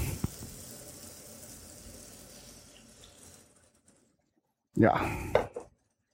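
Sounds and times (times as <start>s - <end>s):
water splashing into curry frying in a hot pan: 0.0s - 4.2s
hiss and sizzle of curry frying in a hot pan: 0.0s - 6.1s
speech: 4.8s - 5.4s.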